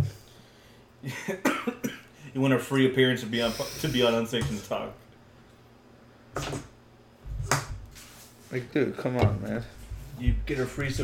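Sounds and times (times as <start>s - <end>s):
speech: 1.0s - 1.8s, 2.4s - 5.0s, 8.5s - 11.0s
harsh coughs: 1.3s - 2.1s.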